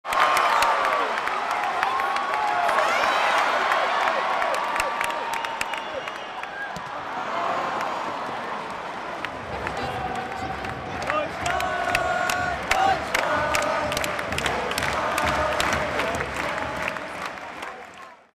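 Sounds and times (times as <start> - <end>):
stadium crowd shouting in Augsburg: 0.1 - 18.3.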